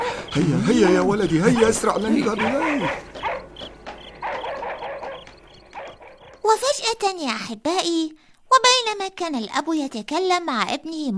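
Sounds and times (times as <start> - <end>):
several dogs barking and snarling: 0.0 - 6.4
speech: 0.4 - 3.2, 6.5 - 11.1.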